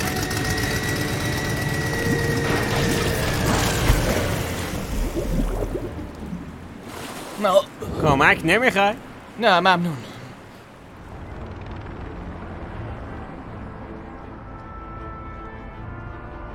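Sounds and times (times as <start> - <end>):
flying boat machinery deploying with ratcheting clicks and whirring gears: 0.0 - 2.6
steady high whine: 0.0 - 6.4
speech: 7.4 - 10.1.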